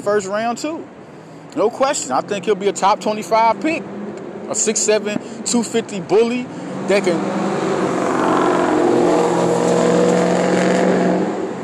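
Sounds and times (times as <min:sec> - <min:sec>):
speech: 0:00.0 - 0:07.7
car engine revving as it drives past: 0:02.1 - 0:05.5, 0:06.4 - 0:11.6.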